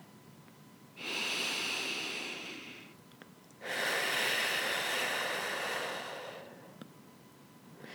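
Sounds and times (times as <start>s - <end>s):
deep breathing in and out during a guided breathing exercise: 1.0s - 3.0s, 3.6s - 6.8s.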